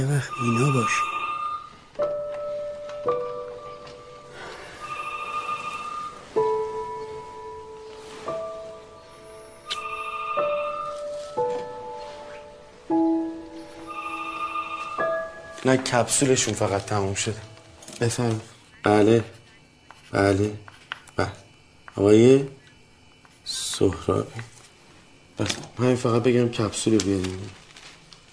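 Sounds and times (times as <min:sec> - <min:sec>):
speech: 0:00.0 - 0:01.2, 0:15.6 - 0:19.4, 0:20.1 - 0:21.4, 0:22.0 - 0:22.6, 0:23.5 - 0:24.6, 0:25.4 - 0:27.6
phone ringtone of bright electronic tones: 0:00.0 - 0:18.3.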